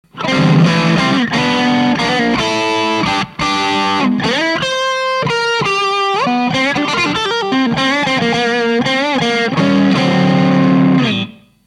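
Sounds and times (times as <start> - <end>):
NJM4558D boost pedal effect with kit-supplied op-amp: 0.1 - 11.6.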